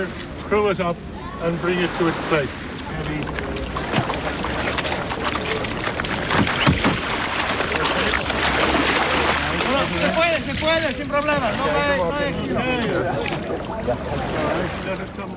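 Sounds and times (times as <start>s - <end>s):
speech: 0.0s - 3.9s, 9.8s - 15.3s
several voices calling and chatting: 0.0s - 15.3s
steady watery wash: 0.0s - 15.3s
rowing boat knocking and clattering while slid off a trailer: 3.0s - 11.6s.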